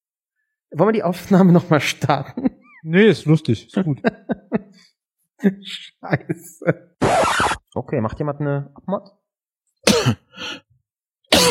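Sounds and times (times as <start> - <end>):
speech: 0.7 - 9.2, 9.9 - 10.6
rasping sound: 7.0 - 7.6
person coughing: 9.8 - 10.3.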